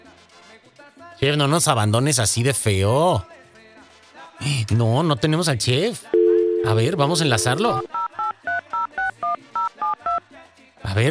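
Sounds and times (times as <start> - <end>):
speech: 1.2 - 3.4, 4.4 - 8.0
telephone keypad dialing tones: 6.2 - 10.2.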